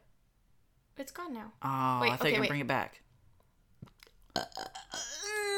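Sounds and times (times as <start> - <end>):
speech: 1.0 - 3.0, 4.3 - 5.2
short throaty croaks: 4.2 - 5.5
loud drawn-out burp: 4.3 - 5.3.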